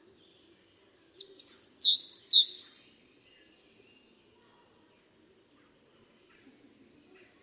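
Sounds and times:
European robin Erithacus rubecula singing: 1.2 - 4.1.

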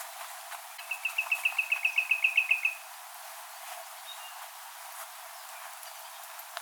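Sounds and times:
Common nightingale Luscinia megarhynchos song trill: 0.8 - 2.9.

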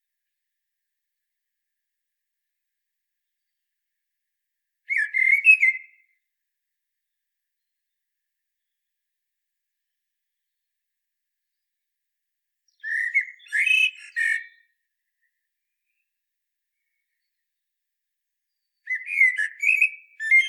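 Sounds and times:
Common blackbird Turdus merula fluty phrases with squeaky twitter: 3.2 - 4.0, 4.8 - 6.3, 12.6 - 17.7, 18.5 - 20.4.

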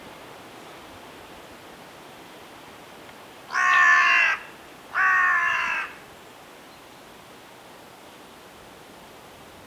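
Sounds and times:
Carrion crow Corvus corone cawing: 3.5 - 6.0.

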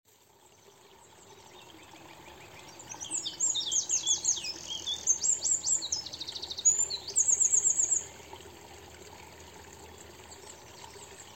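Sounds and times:
Eurasian wren singing ticking notes and trills: 2.2 - 8.1.

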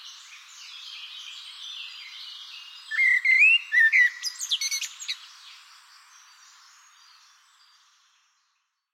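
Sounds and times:
common blackbird Turdus merula whistling: 2.9 - 4.9.

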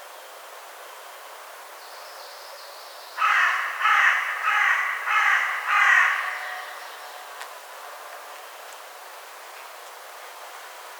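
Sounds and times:
carrion crow Corvus corone giving harsh hoarse caws: 3.2 - 7.2.

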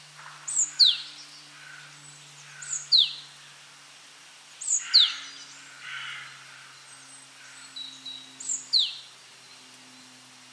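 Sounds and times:
low constant hum: 0.0 - 10.5
great tit giving downward-sweeping notes: 0.2 - 3.4, 4.6 - 9.6.

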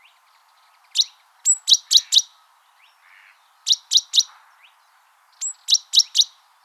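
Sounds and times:
great tit calling with sharp high chirps: 0.0 - 3.0, 3.7 - 4.4, 5.4 - 6.6.

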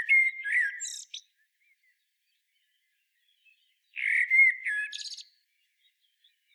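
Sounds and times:
Common blackbird Turdus merula song: 0.0 - 6.5.

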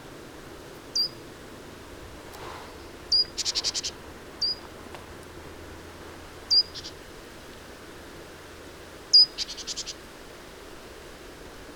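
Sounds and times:
low background noise: 0.0 - 11.7
great tit (Parus major) giving thin high slurred notes: 0.9 - 1.2, 2.4 - 4.6, 6.5 - 7.0, 9.1 - 10.0.

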